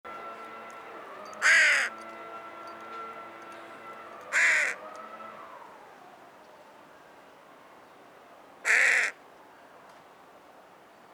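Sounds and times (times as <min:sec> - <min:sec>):
carrion crow Corvus corone cawing: 0:01.4 - 0:02.0, 0:04.3 - 0:04.8, 0:08.7 - 0:09.2.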